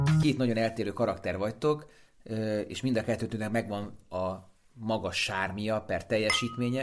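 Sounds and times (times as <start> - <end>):
speech: 0.2 - 6.8
wine glasses clinking in a toast: 6.3 - 6.8.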